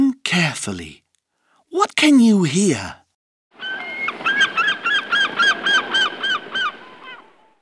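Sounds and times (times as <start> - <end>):
speech: 0.4 - 1.0, 1.7 - 3.0
seagull giving harsh laughing calls: 3.6 - 7.6.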